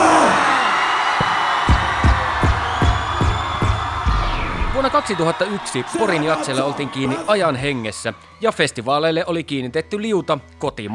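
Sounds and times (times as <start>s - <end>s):
large concert crowd at hip hop concert at jazz festival shouting: 0.0s - 8.0s
speech: 4.9s - 10.9s.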